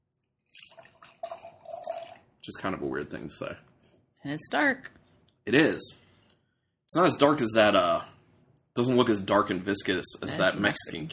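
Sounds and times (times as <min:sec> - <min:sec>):
dry Irish stout pouring from a very full can: 0:00.4 - 0:02.3
speech: 0:02.4 - 0:06.0, 0:06.9 - 0:08.1, 0:08.8 - 0:11.1.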